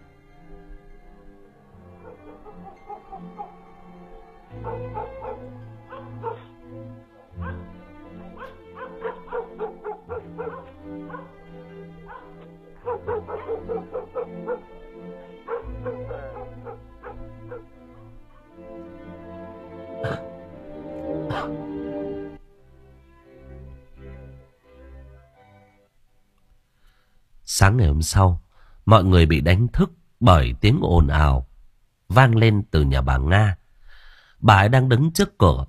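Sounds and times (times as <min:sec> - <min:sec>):
dogs barking and yipping in a village: 0:01.6 - 0:21.8
speech: 0:02.6 - 0:06.3, 0:27.6 - 0:31.5, 0:32.1 - 0:33.6, 0:34.4 - 0:35.6.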